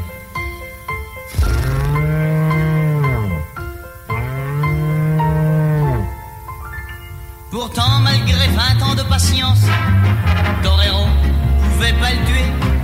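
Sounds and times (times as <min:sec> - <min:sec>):
gentle bull from Cerdagne mooing: 0:01.3 - 0:06.2
speech: 0:07.7 - 0:12.8.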